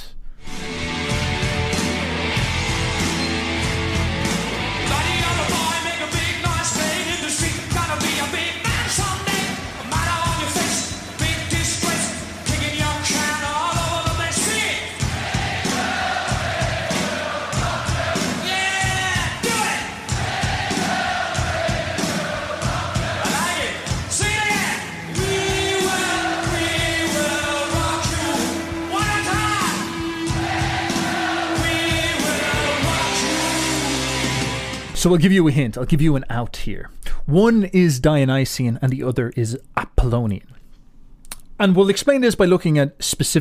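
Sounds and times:
live rock band with distorted sound: 0:00.5 - 0:35.1
roaring crowd yelling and shouting at a rock concert: 0:01.3 - 0:07.1, 0:07.8 - 0:34.9
speech: 0:35.0 - 0:40.6, 0:41.6 - 0:43.4.

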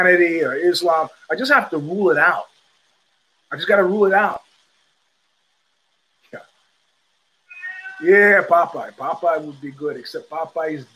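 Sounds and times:
speech: 0:00.0 - 0:02.5, 0:03.5 - 0:04.4, 0:08.0 - 0:10.9
cat meowing: 0:07.5 - 0:08.4.

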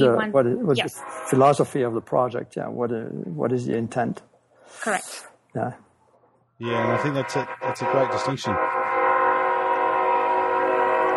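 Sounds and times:
speech: 0:00.0 - 0:05.8, 0:06.6 - 0:08.9
freight train horn blast on a merchandise track in Colorado: 0:00.8 - 0:01.8, 0:06.6 - 0:11.1.

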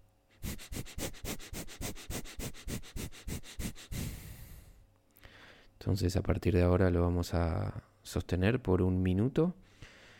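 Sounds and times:
short rapid breaths through the nose as a breathing exercise: 0:00.3 - 0:05.7
long breath: 0:00.4 - 0:05.8, 0:09.6 - 0:10.1
speech: 0:05.8 - 0:09.6.

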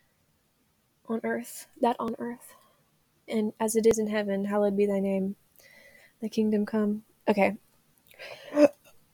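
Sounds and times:
speech: 0:01.1 - 0:02.6, 0:03.3 - 0:05.4, 0:06.2 - 0:07.6, 0:08.2 - 0:08.8
person burping: 0:08.5 - 0:08.8.

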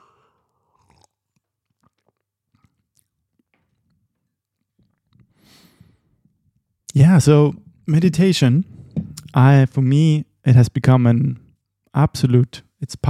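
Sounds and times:
person sipping a drink: 0:00.0 - 0:06.4
swallowing: 0:00.0 - 0:06.4
wet mouth clicks: 0:00.5 - 0:05.4
speech: 0:07.0 - 0:08.8, 0:09.4 - 0:11.4, 0:12.0 - 0:13.0.

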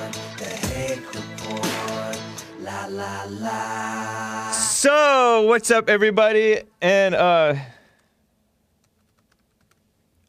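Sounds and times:
computer keyboard typing: 0:00.5 - 0:01.9, 0:08.8 - 0:09.8
speech: 0:04.8 - 0:07.7.

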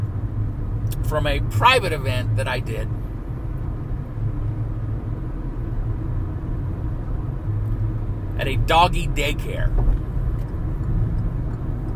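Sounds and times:
car engine and road noise heard from inside the cabin: 0:00.0 - 0:11.9
speech: 0:01.0 - 0:03.0, 0:08.4 - 0:10.0.

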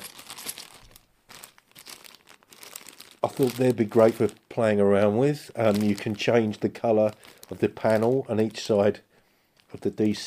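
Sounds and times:
envelope containing Lego dice being opened: 0:00.0 - 0:04.4, 0:05.6 - 0:08.8
paper crinkling and tearing: 0:00.0 - 0:04.5, 0:05.5 - 0:08.8
speech: 0:03.3 - 0:09.1, 0:09.7 - 0:10.2.

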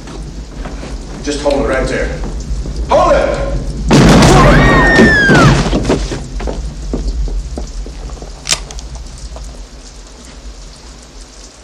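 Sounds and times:
speech: 0:01.2 - 0:03.6
gunshot in an Old West shootout: 0:03.9 - 0:05.8
sharp crack: 0:03.9 - 0:06.3, 0:08.4 - 0:08.8.

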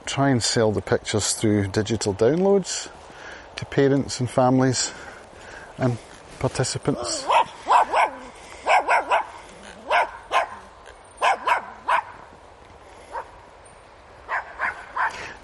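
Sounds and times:
speech: 0:00.1 - 0:03.0, 0:03.6 - 0:05.2, 0:05.8 - 0:07.3
small dog yapping: 0:07.0 - 0:12.2, 0:14.3 - 0:15.4.

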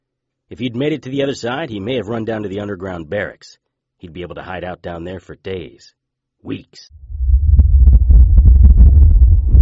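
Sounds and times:
speech: 0:00.5 - 0:07.0
deep earthquake rumble of an island shaking apart: 0:06.9 - 0:09.6.

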